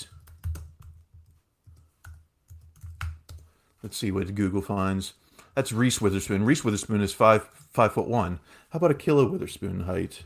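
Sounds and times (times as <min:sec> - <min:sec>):
computer keyboard typing a search query: 0:00.0 - 0:03.5
speech: 0:03.8 - 0:10.2.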